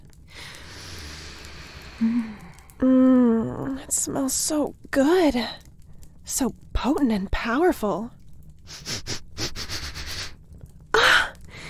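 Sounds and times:
speech: 2.0s - 3.1s, 3.9s - 5.7s, 6.3s - 9.0s
person sniffing rapidly with the nose: 8.7s - 10.4s.

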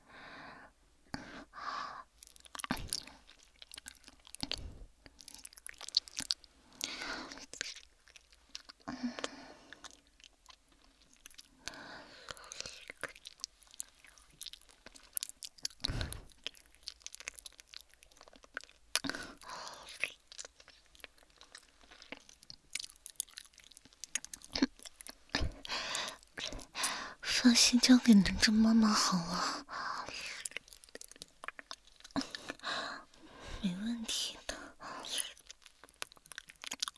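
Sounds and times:
wet mouth sounds of chewing and nibbling on fingers: 2.1s - 27.2s, 29.7s - 36.9s
speech: 27.5s - 29.6s.

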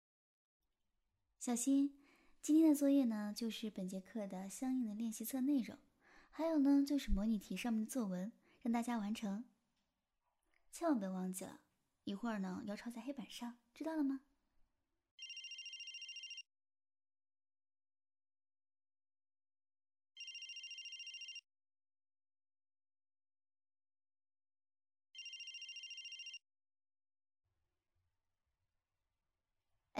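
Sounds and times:
speech: 1.4s - 9.5s, 10.8s - 14.3s
telephone ringing with electronic trill: 15.2s - 16.4s, 20.2s - 21.4s, 25.2s - 26.4s.

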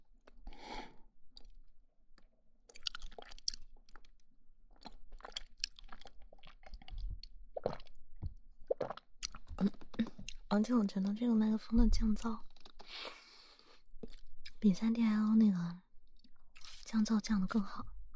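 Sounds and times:
person eating and chewing into a microphone: 2.2s - 10.5s, 12.5s - 13.1s, 14.0s - 14.6s, 16.3s - 16.8s
swallowing: 4.8s - 10.4s
speech: 10.5s - 13.1s, 14.6s - 15.8s, 16.9s - 17.9s.

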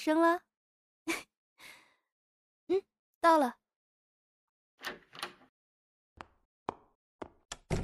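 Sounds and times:
speech: 0.0s - 1.2s, 2.7s - 3.6s
door opening and closing: 4.8s - 5.5s, 7.5s - 7.8s.

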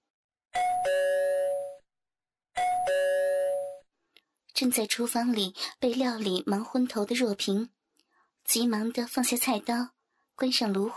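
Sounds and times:
doorbell ringing with a two-tone ding-dong chime: 0.6s - 1.9s, 2.6s - 3.9s
speech: 4.6s - 7.8s, 8.4s - 10.9s.

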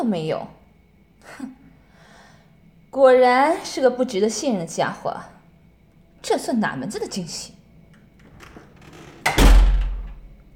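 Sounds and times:
speech: 0.0s - 0.6s, 1.2s - 1.6s, 2.9s - 5.4s, 6.2s - 7.6s
door of an empty room shutting with a heavy thud: 8.2s - 10.4s.

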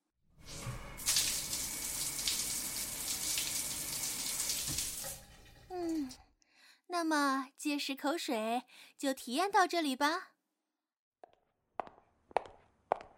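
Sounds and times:
shower spraying water: 0.4s - 5.7s
person's voice: 5.7s - 6.2s, 6.9s - 10.4s
speech: 7.0s - 10.3s.

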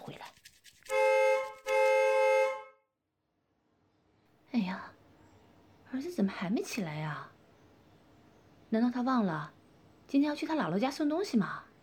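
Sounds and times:
car horn honking outside the window: 0.9s - 2.8s
speech: 6.2s - 7.4s, 8.7s - 11.6s.

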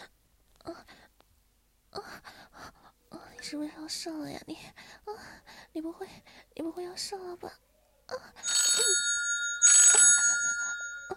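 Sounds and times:
speech: 3.5s - 9.0s
mobile phone with shrill bell-like ringtone ringing: 8.4s - 11.1s.

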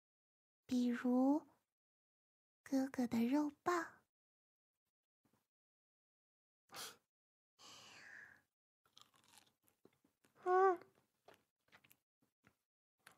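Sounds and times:
speech: 0.7s - 1.5s, 2.7s - 4.0s, 10.4s - 10.9s
someone chewing and eating shrimp: 8.9s - 13.1s.

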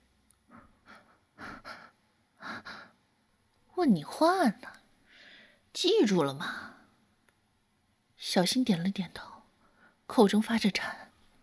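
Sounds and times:
boy panting heavily and gasping for air: 0.5s - 3.0s
speech: 3.8s - 4.8s, 5.8s - 6.7s, 8.2s - 9.3s, 10.1s - 11.0s.

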